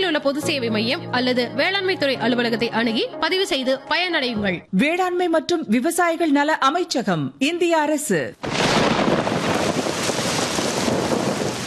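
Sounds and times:
speech: 0.2s - 9.2s
gusty wind: 8.4s - 11.6s
heavy rain pouring with a hissing wash: 8.4s - 11.6s
low thunder rumbling: 8.4s - 11.6s.

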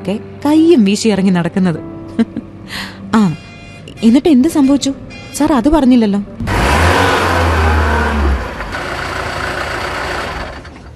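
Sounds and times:
speech: 0.0s - 3.4s, 4.0s - 6.5s
bus engine revving: 6.4s - 10.9s.

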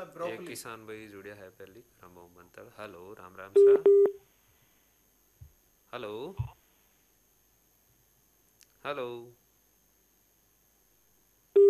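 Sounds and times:
speech: 0.1s - 4.2s, 5.9s - 6.6s, 8.8s - 9.4s
telephone busy tone after a call-in line was cut off: 3.6s - 4.2s.

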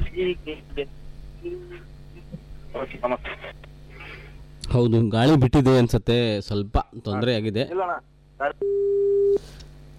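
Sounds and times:
speech: 0.2s - 3.7s, 4.7s - 9.7s
telephone busy tone after a phone-in call cuts off: 8.6s - 9.4s.

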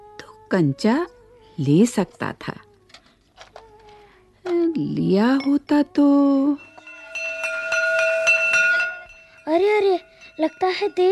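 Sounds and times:
speech: 0.5s - 2.7s, 4.8s - 6.6s, 9.5s - 11.1s
school bell ringing: 6.6s - 11.1s.

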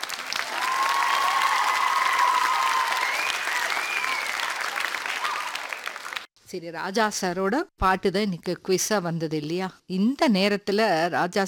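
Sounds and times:
loud applause from many hands: 0.0s - 6.3s
speech: 6.5s - 11.4s.

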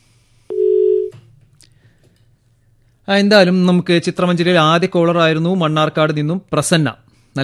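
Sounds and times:
mid-pitched telephone beep after a phone-in caller's line drops: 0.5s - 1.2s
speech: 3.1s - 7.4s.

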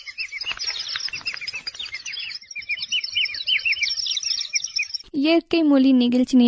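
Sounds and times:
Western Ghats forest bird chirping: 0.0s - 5.2s
speech: 5.2s - 6.4s.

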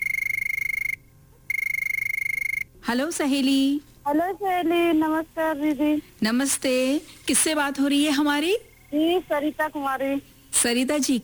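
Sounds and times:
telephone ringing with a rapid high trilling electronic ring: 0.0s - 2.7s
speech: 2.9s - 11.2s.

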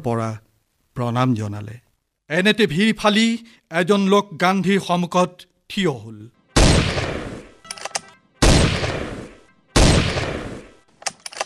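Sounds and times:
speech: 0.0s - 0.4s, 1.0s - 7.0s
pistol shots: 6.6s - 7.6s, 8.4s - 10.8s.

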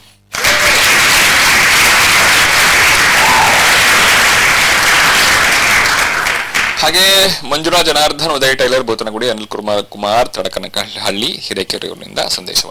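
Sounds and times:
loud dense applause from many clapping hands: 0.3s - 7.2s
speech: 6.8s - 12.6s.

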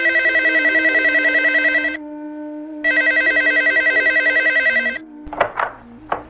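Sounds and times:
electronic telephone ringing on a call to a doctor: 0.0s - 2.0s, 2.9s - 5.6s
low steady tone: 0.0s - 6.2s.

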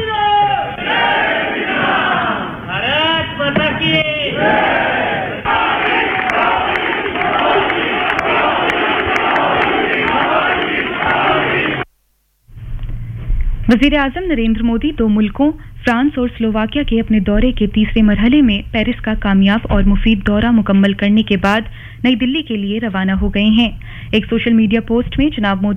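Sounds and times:
crowd chanting welcome slogans: 0.2s - 11.9s
speech: 13.7s - 25.7s.

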